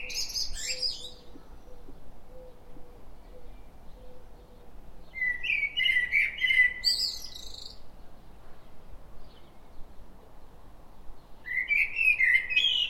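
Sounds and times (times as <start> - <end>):
common blackbird Turdus merula singing: 0.0 - 7.8, 11.4 - 12.8.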